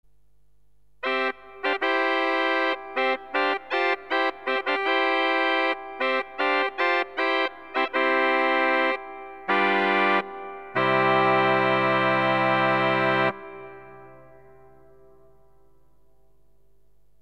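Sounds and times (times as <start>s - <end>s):
trumpet: 1.0s - 14.5s.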